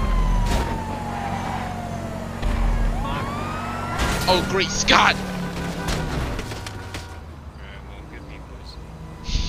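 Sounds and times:
video game police car siren wailing: 0:00.0 - 0:07.1, 0:09.0 - 0:09.4
speech: 0:04.3 - 0:05.3.

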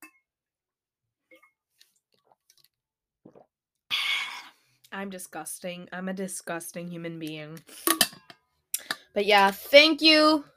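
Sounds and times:
person drinking water with small wet gulps: 0:02.1 - 0:04.5
speech: 0:05.0 - 0:08.2, 0:09.2 - 0:10.5.

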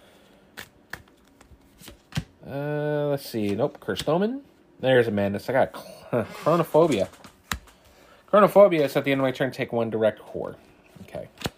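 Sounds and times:
deck of cards being shuffled: 0:00.5 - 0:02.3, 0:06.3 - 0:07.9, 0:11.0 - 0:11.5
speech: 0:02.5 - 0:07.2, 0:08.3 - 0:10.6.

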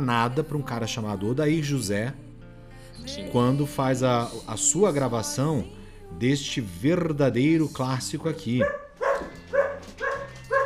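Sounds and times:
speech: 0:00.0 - 0:02.2, 0:03.0 - 0:09.3
dogs barking outside studio door: 0:08.3 - 0:10.6.

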